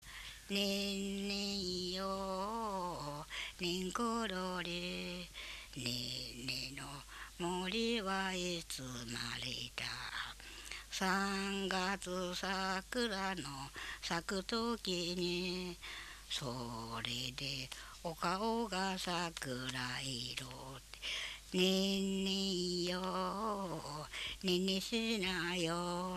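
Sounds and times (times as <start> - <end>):
folk song lullaby: 0.1 - 26.1.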